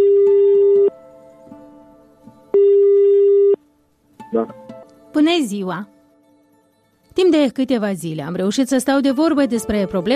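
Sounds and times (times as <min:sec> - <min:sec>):
telephone ringback tone while placing a call: 0:00.0 - 0:00.9, 0:02.6 - 0:03.6
speech: 0:04.3 - 0:06.0, 0:07.2 - 0:10.1.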